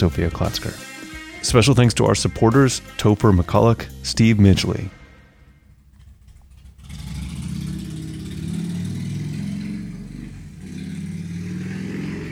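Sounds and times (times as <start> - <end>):
speech: 0.0 - 5.0
loud motorcycle engine revving: 5.7 - 12.3.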